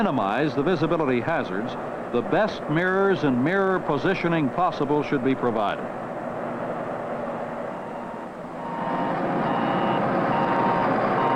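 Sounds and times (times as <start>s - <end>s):
speech: 0.0s - 6.0s
low truck diesel engine rumble: 0.0s - 11.3s
truck backup alarm beeping in reverse: 7.7s - 11.3s.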